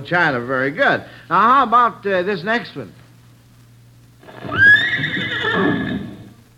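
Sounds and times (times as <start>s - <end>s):
speech: 0.0s - 3.0s
horse whinnying: 4.2s - 6.4s.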